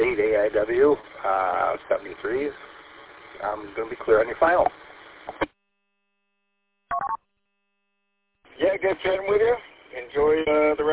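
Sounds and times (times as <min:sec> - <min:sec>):
speech: 0:00.5 - 0:02.7, 0:03.4 - 0:05.5, 0:08.6 - 0:10.9
telephone giving electronic ring for incoming call: 0:06.9 - 0:07.2.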